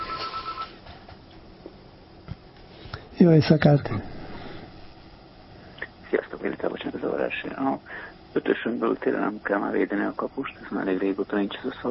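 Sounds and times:
electronic phone ring for an incoming call: 0.0s - 0.8s
faint room noise: 0.0s - 11.8s
speech: 3.2s - 4.1s, 6.7s - 11.8s.

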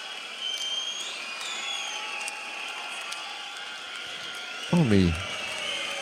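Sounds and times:
rock concert crowd roaring in a sustained ovation: 0.0s - 6.0s
sharp whistles: 0.2s - 2.7s
speech: 4.7s - 5.3s.

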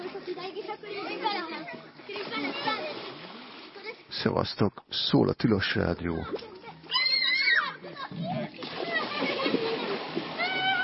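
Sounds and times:
water splashing and sloshing: 0.0s - 4.7s, 5.6s - 10.8s
speech: 4.1s - 6.5s
children calling out: 6.3s - 10.8s.

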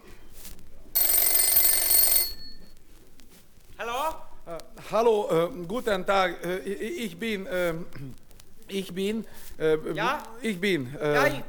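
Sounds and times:
telephone ringing with an electric bell: 1.0s - 2.8s
speech: 4.9s - 11.4s.

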